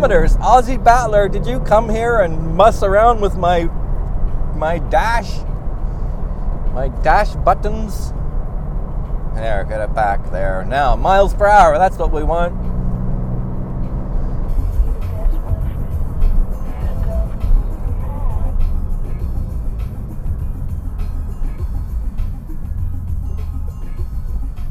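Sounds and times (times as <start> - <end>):
speech: 0.0 - 3.8, 4.6 - 5.5, 6.8 - 8.2, 9.4 - 12.7
high-speed vibration from a tire that has lost a balance weight: 0.0 - 24.6
road rumble and hum inside a car driving at highway speed: 0.0 - 24.6.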